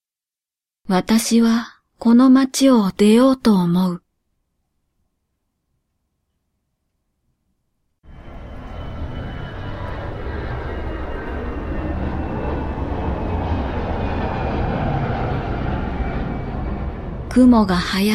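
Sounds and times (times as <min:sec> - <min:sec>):
speech: 0:00.9 - 0:04.0, 0:17.4 - 0:18.1
airplane engine drone in flight: 0:08.1 - 0:18.1
faint high whine: 0:08.1 - 0:18.1.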